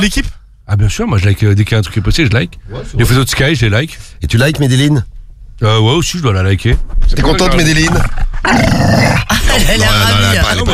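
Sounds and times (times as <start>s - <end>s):
speech: 0.0s - 10.7s
agitated female dog growling: 7.7s - 9.3s.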